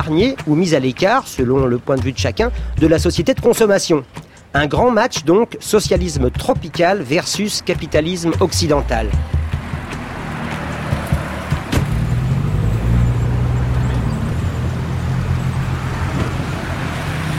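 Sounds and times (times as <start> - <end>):
speech: 0.0 - 9.4
road noise: 0.0 - 17.3
1955 Chevrolet engine rumble while driving in Cuba, heard from inside the cabin: 1.6 - 3.4, 7.7 - 17.3.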